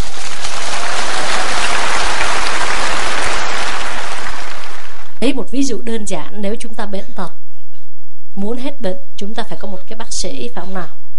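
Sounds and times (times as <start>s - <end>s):
audience applause: 0.0s - 5.2s
speech: 5.2s - 7.4s, 8.4s - 11.0s.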